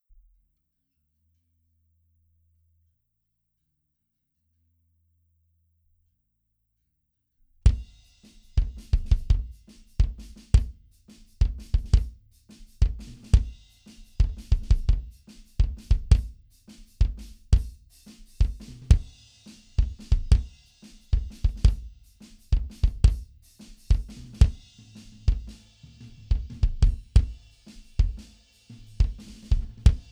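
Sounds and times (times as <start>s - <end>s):
mono drums: 7.7s - 30.1s.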